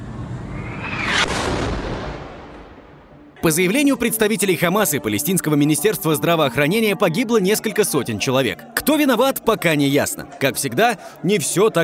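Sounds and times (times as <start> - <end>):
rising whistle-like rush: 0.0 - 2.9
lingering rumble after explosion: 0.0 - 3.4
single heavy explosion blast: 0.0 - 3.4
speech: 3.4 - 11.8.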